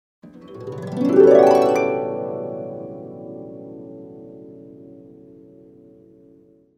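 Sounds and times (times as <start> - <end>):
harp glissando: 0.3 - 6.3.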